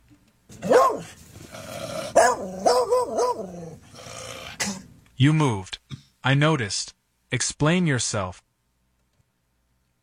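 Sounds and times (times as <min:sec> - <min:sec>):
dog barking: 0:00.6 - 0:01.2, 0:02.1 - 0:03.8
speech: 0:05.2 - 0:08.4.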